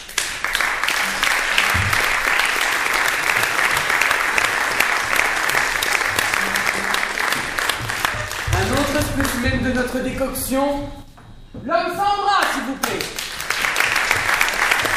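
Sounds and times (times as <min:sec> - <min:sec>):
crowd of spectators applauding at a show: 0:00.0 - 0:10.1, 0:12.4 - 0:14.9
speech: 0:09.7 - 0:11.0, 0:11.6 - 0:13.2.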